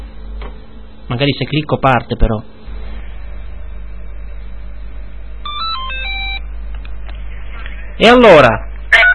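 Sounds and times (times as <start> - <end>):
speech: 1.1 - 2.5, 8.0 - 8.7
phone ringing with a short melodic electronic ringtone: 5.4 - 6.4.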